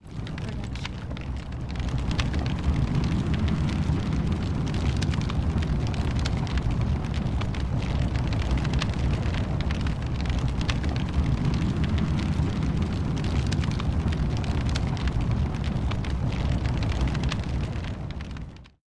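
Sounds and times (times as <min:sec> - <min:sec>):
fire: 0:00.0 - 0:18.8.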